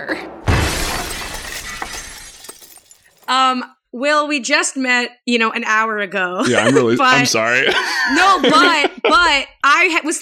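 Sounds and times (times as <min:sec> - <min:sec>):
speech: 0:00.0 - 0:00.4, 0:03.3 - 0:10.2
glass door shattering as someone runs through it: 0:00.5 - 0:03.4
glass shards tinkling as they scatter and fall: 0:00.9 - 0:03.4
laughter: 0:06.4 - 0:09.4.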